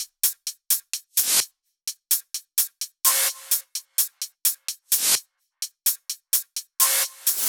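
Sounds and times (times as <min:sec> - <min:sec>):
128 BPM flatbeat kit beat: 0:00.0 - 0:07.4.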